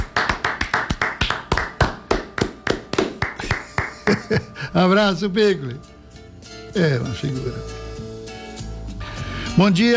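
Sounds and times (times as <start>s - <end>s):
sharp hand clapping from one person or a small few: 0.0s - 4.4s
laughter: 3.4s - 4.7s
speech: 4.3s - 5.9s, 6.8s - 7.8s, 9.6s - 9.9s.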